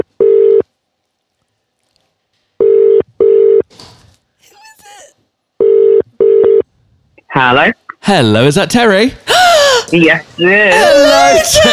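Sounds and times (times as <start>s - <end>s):
ringback tone of an outgoing phone call: 0.0s - 0.6s, 2.6s - 3.6s, 5.6s - 6.6s
speech: 7.4s - 9.3s, 9.9s - 11.7s.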